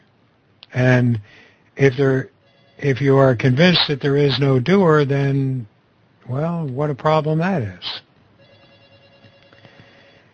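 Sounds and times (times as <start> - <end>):
speech: 0.7 - 5.7, 6.3 - 8.0
telephone ringing: 2.4 - 3.0, 8.4 - 10.3.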